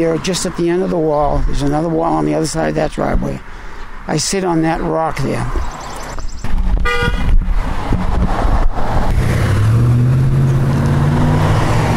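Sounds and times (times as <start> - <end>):
speech: 0.0 - 5.8
large truck engine rumbling on a road: 0.0 - 11.9
traffic noise: 0.0 - 11.9
truck horn toot: 6.8 - 7.3.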